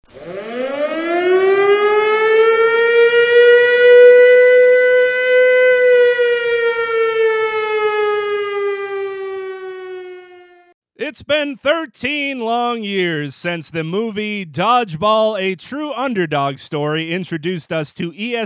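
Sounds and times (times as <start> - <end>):
loud civil defense siren wailing: 0.1 - 10.8
speech: 11.1 - 18.4.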